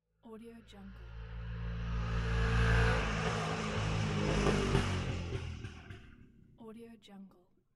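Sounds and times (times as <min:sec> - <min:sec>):
motorbike driving by: 0:00.8 - 0:06.4.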